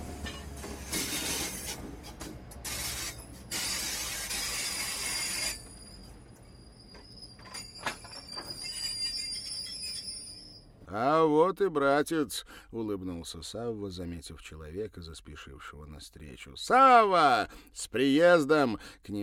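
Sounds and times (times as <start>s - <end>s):
train grinding along with broadband rumble: 0.0s - 10.0s
high-pitched train brake squeals: 2.7s - 10.8s
speech: 11.0s - 19.2s.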